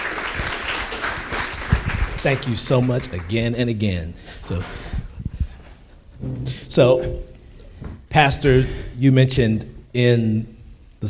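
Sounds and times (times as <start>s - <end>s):
audience clapping hands: 0.0s - 3.6s
speech: 2.2s - 4.8s, 6.7s - 7.3s, 8.2s - 11.0s.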